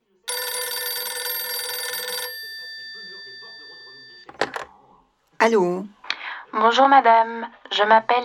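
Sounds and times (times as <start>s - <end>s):
telephone ringing with a metallic bell trill: 0.0s - 4.7s
telephone receiver being picked up: 3.3s - 4.8s
speech: 5.4s - 8.2s.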